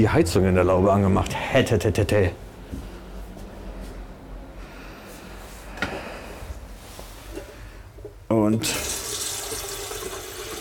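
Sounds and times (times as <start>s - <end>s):
speech: 0.0s - 2.4s, 8.5s - 8.9s
water running from a garden tap: 8.6s - 10.5s.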